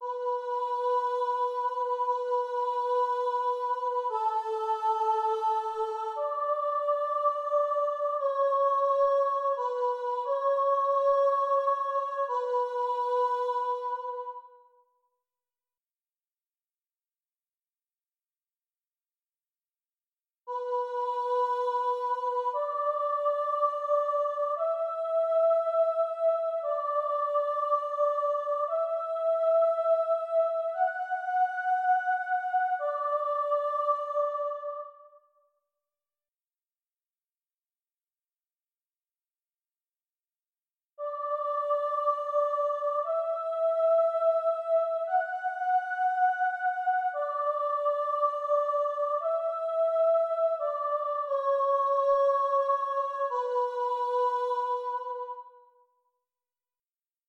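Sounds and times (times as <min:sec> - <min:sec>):
soprano singing alone: 0:00.0 - 0:14.6, 0:20.5 - 0:35.2, 0:41.0 - 0:55.7.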